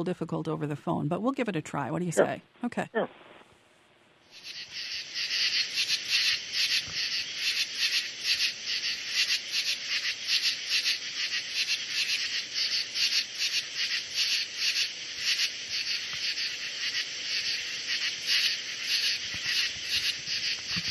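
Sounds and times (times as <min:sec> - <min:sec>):
speech: 0:00.0 - 0:03.4
true katydid calling: 0:04.3 - 0:20.8.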